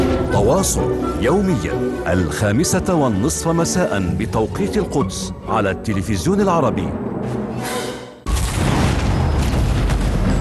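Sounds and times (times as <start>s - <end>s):
speech: 0.4s - 7.8s
explosion of a missile fired from a warplane in Gaza City: 8.3s - 10.3s.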